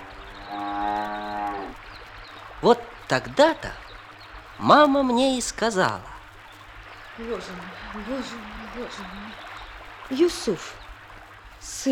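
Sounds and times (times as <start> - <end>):
cow mooing: 0.0 - 1.8
speech: 2.6 - 3.8, 4.6 - 6.1, 7.2 - 9.4, 10.1 - 10.8, 11.6 - 11.9.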